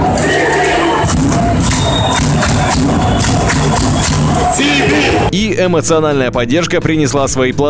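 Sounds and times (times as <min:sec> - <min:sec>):
thuds: 0:00.0 - 0:04.6
crowd of hockey fans cheering in an arena: 0:00.0 - 0:05.3
speech: 0:05.6 - 0:07.6.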